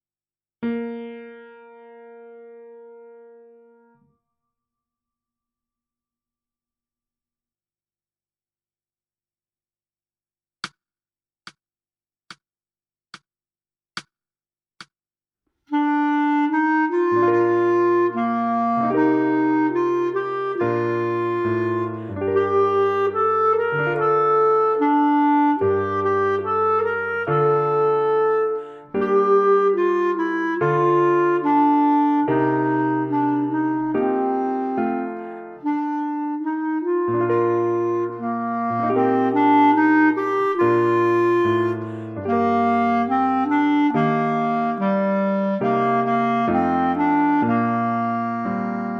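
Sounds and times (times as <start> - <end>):
clarinet: 15.7 - 48.9.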